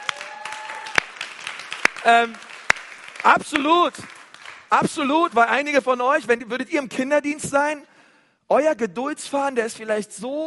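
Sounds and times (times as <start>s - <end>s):
audience applause: 0.0s - 4.8s
speech: 2.0s - 2.5s, 3.2s - 7.9s, 8.5s - 10.4s.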